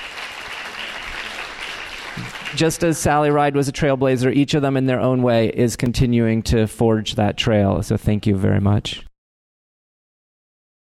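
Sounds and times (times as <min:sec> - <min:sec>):
dense audience applause: 0:00.0 - 0:03.0
speech: 0:02.2 - 0:09.1.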